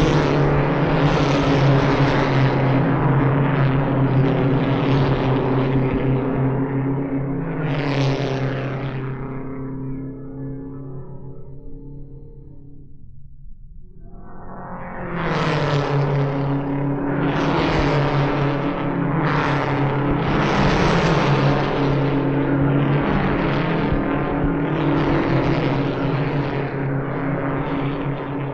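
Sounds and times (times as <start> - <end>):
race cars lapping an oval track at about 140 mph: 0.0 - 10.7, 15.0 - 28.5.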